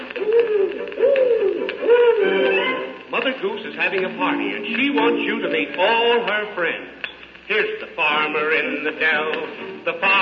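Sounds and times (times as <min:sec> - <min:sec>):
owl hooting: 0:00.0 - 0:03.0
speech: 0:03.4 - 0:10.1.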